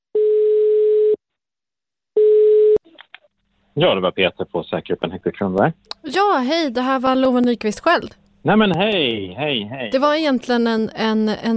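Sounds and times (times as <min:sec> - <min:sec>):
telephone ringback tone of a call to a remand prison: 0:00.2 - 0:01.2, 0:02.2 - 0:02.8
speech: 0:03.8 - 0:11.5.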